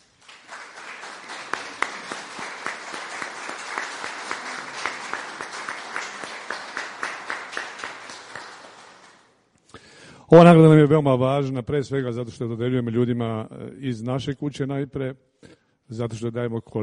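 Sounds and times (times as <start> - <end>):
audience applause at an award ceremony: 0.0 - 9.3
rhythmic unison clapping by an audience: 0.0 - 9.6
speech: 10.3 - 15.3, 15.9 - 16.8.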